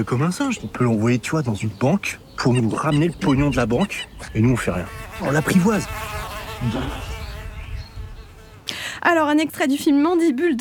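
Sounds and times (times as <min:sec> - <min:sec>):
speech: 0:00.0 - 0:07.1, 0:09.1 - 0:10.5
housefly buzzing: 0:02.5 - 0:08.8.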